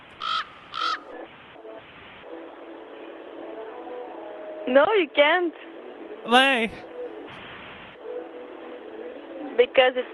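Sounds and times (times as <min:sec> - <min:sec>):
crow cawing: 0:00.2 - 0:01.1
speech: 0:04.7 - 0:06.9, 0:09.6 - 0:10.1.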